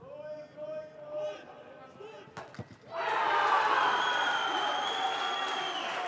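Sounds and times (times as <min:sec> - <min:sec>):
large stadium crowd cheering a goal in Germany's third division: 0:02.9 - 0:06.0.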